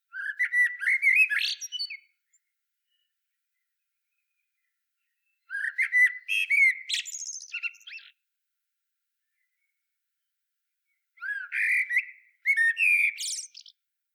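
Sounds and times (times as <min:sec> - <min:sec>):
common blackbird Turdus merula singing: 0:00.1 - 0:08.2, 0:10.9 - 0:13.8.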